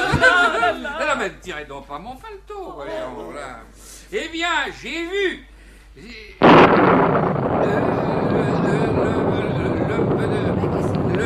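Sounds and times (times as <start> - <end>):
laughter: 0.0 - 1.2
speech: 0.2 - 9.2, 10.0 - 11.2
heavy rain: 6.4 - 11.2.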